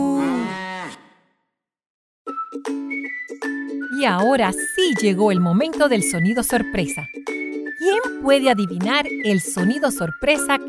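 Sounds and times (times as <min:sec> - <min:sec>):
cow mooing: 0:00.2 - 0:01.2
speech: 0:04.0 - 0:07.3, 0:07.8 - 0:10.6.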